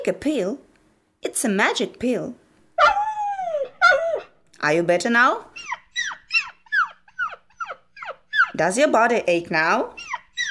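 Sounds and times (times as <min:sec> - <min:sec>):
speech: 0:00.0 - 0:00.6, 0:01.2 - 0:02.4, 0:04.6 - 0:05.8, 0:08.6 - 0:10.0
puppy whimpering: 0:02.8 - 0:04.4, 0:05.6 - 0:08.6, 0:10.0 - 0:10.4.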